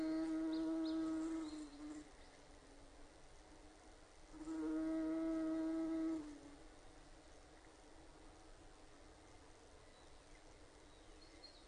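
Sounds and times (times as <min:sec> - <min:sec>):
Bombus ardens buzzing: 0:00.0 - 0:02.1, 0:04.4 - 0:06.6.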